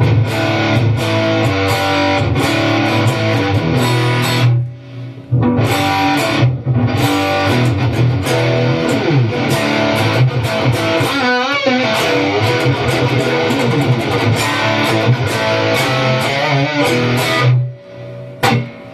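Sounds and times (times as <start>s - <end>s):
heavily distorted high-gain electric guitar playing chugging riffs: 0.0s - 18.9s.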